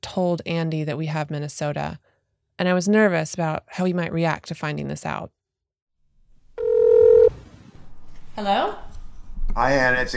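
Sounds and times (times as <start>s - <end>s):
speech: 0.0s - 5.4s, 8.4s - 8.9s, 9.6s - 10.1s
electronic phone tone of a call being dialed: 6.6s - 7.3s.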